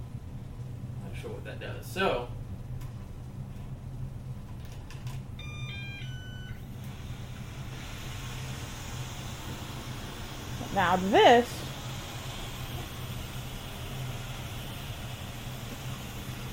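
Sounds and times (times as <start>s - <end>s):
steady low hum: 0.0s - 16.5s
speech: 1.2s - 2.4s, 10.8s - 11.6s
robot vacuum beeping a stepped tone sequence: 5.4s - 7.0s.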